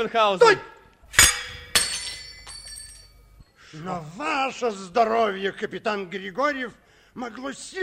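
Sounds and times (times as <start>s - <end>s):
speech: 0.0s - 0.7s, 3.7s - 7.8s
filled drinking glass with poisoned drink smashing: 1.1s - 3.4s.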